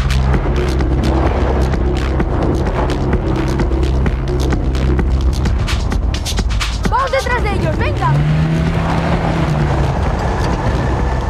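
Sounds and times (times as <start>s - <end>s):
car engine and road rumble driving through the desert: 0.0s - 11.2s.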